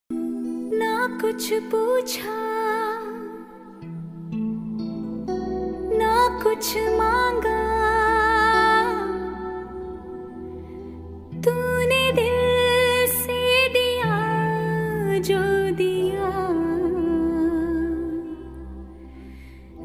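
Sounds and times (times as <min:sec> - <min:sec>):
romantic Hindi song ringtone: 0:00.1 - 0:19.8.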